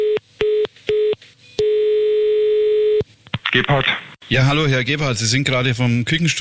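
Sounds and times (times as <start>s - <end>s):
electronic telephone line tone after a phone call is hung up: 0.0s - 3.0s
speech: 3.6s - 6.4s.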